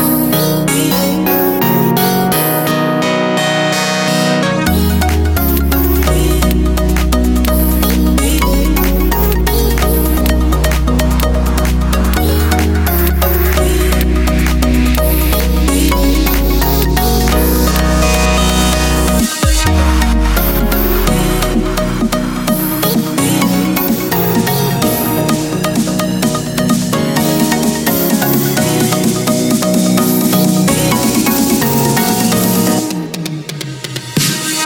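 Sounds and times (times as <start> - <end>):
house music intro: 0.1 - 34.6.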